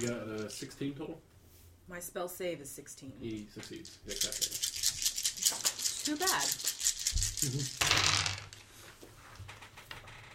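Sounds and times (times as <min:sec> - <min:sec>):
handful of dice clattering across a hard tabletop: 0:00.0 - 0:00.8, 0:03.3 - 0:08.7
speech: 0:00.0 - 0:01.3, 0:01.9 - 0:06.7, 0:07.4 - 0:08.3.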